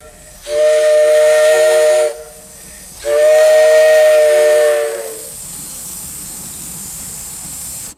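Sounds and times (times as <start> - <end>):
short bursts of a steam train whistle: 0.0 - 5.4.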